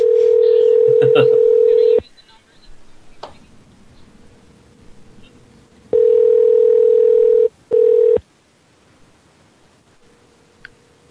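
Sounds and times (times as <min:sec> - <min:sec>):
phone line tone on a conference call bridge: 0:00.0 - 0:02.0, 0:05.9 - 0:08.2.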